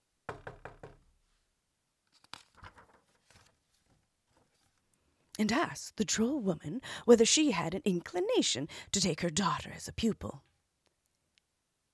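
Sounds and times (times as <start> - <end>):
knocking on a wooden door: 0.3 - 1.1
speech: 5.4 - 10.5.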